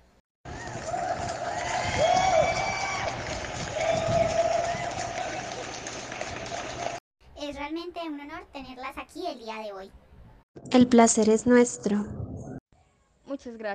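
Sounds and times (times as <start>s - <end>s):
audience applause for guests being introduced: 0.5s - 7.0s
cheers and whistles: 0.5s - 7.0s
speech: 8.0s - 10.0s, 10.6s - 12.3s, 13.4s - 13.7s.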